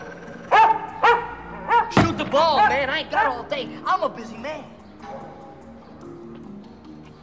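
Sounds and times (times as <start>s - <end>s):
dog barking: 0.4s - 3.5s, 5.0s - 5.5s
speech: 2.3s - 4.8s.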